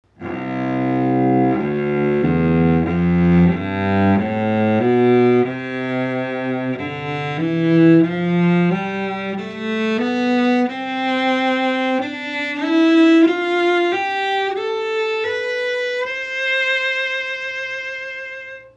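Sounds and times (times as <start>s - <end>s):
carbon cello with carbon endpin: 0.1s - 18.7s.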